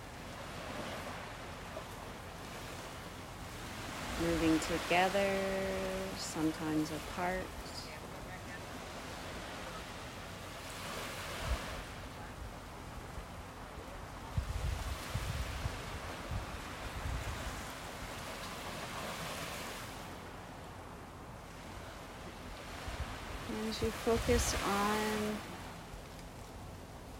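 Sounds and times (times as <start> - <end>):
ocean waves washing onto a shore: 0.0 - 27.1
speech: 4.2 - 7.7, 23.7 - 25.6.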